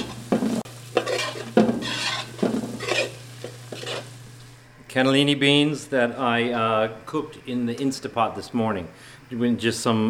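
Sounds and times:
scraping stir strokes tossing pasta with oil, garlic and broccoli in a pan: 0.0 - 4.3
low constant hum: 0.0 - 10.0
steady sizzle of pasta, oil, garlic and broccoli in a pan: 0.0 - 10.0
speech: 4.9 - 10.0.

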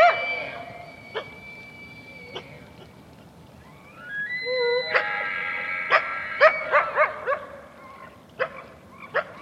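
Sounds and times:
coyote barking and yipping: 0.0 - 1.4, 4.5 - 9.3
coyote howl-like calls: 0.0 - 2.7, 3.6 - 8.2.

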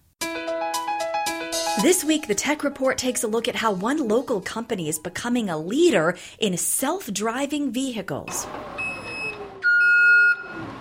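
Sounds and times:
speech: 1.8 - 8.8
electronic beep at a truck factory: 8.8 - 10.7.

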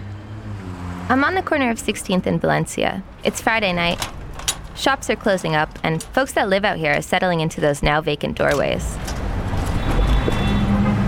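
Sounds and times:
engine revving: 0.0 - 2.0, 9.1 - 11.0
street traffic rumble at a street corner: 0.0 - 11.0
speech: 1.1 - 4.2, 4.8 - 9.1.

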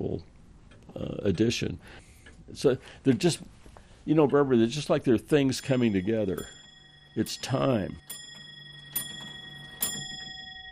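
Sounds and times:
speech: 1.0 - 6.6, 7.2 - 8.2
faint sustained metallic ring: 5.6 - 10.6
grandfather clock ticking: 5.6 - 10.6.

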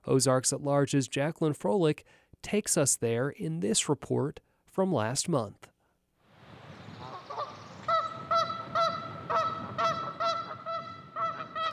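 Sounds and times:
speech: 0.1 - 5.7
flock of geese honking on the banks of Lincoln Lake in Northwest Arkansas: 6.8 - 11.7.

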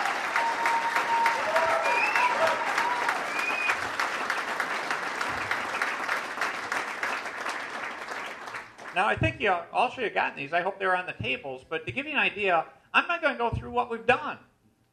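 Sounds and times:
whistles and cheers: 0.0 - 4.0, 5.6 - 6.2
audience applauding: 0.0 - 9.1
speech: 9.0 - 14.5.

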